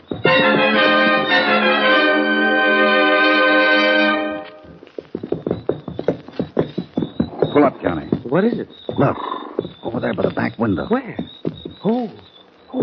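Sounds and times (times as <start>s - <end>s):
horse hooves clip-clopping as horses are ridden at a brisk pace in town at night: 0.0s - 0.8s, 4.4s - 12.4s
sustained musical chord ringing: 0.2s - 4.6s
speech: 7.9s - 12.8s.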